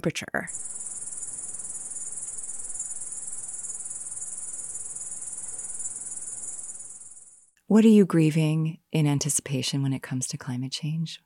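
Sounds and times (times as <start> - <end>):
speech: 0.0 - 0.9, 7.7 - 11.2
dense chorus of crickets chirping: 0.5 - 7.6.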